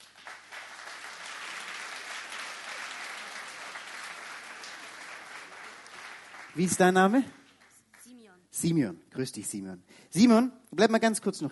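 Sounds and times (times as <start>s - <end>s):
audience applause: 0.0s - 8.1s
speech: 6.6s - 7.4s, 8.6s - 11.5s.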